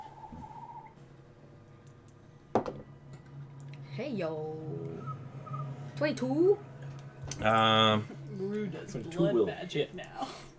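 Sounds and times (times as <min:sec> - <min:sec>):
faint steady whistled bird note: 0:00.0 - 0:01.0
speech: 0:04.0 - 0:04.9, 0:06.0 - 0:06.7, 0:07.4 - 0:10.5.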